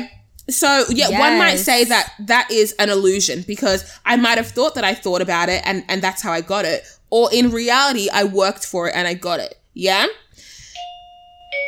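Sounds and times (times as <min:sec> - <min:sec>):
speech: 0:00.0 - 0:10.2
faint hiss: 0:00.0 - 0:10.8
two-tone doorbell chime: 0:10.8 - 0:11.6.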